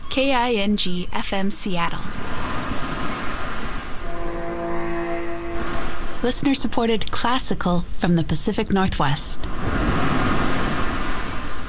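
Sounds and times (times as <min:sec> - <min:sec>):
speech: 0:00.2 - 0:02.3, 0:06.2 - 0:09.8
rushing water: 0:02.1 - 0:07.2, 0:09.4 - 0:11.6.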